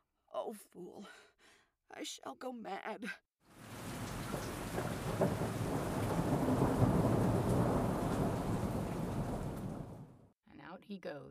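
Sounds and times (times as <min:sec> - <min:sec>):
speech: 0:00.4 - 0:03.3, 0:10.8 - 0:11.2
dense rain in a thunderstorm: 0:03.5 - 0:10.3
deep rolling thunder: 0:03.6 - 0:10.3.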